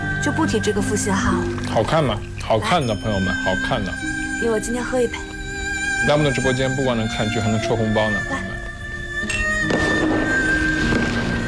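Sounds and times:
speech: 0.2 - 5.3, 6.0 - 8.5
fireworks crackling and booming: 9.6 - 11.4.

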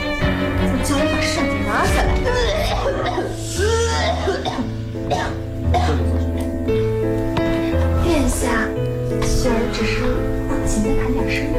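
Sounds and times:
music: 0.0 - 11.5
man with a cold coughing: 4.0 - 6.2.

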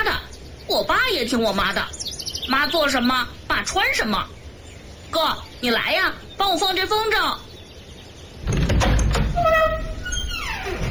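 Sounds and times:
speech: 0.7 - 4.4, 5.1 - 7.4
door being pushed open: 8.4 - 10.8.

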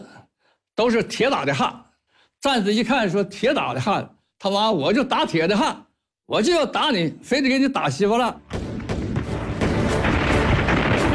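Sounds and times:
speech: 0.8 - 8.7
artillery barrage booms on enemy bunkers: 8.5 - 11.1.

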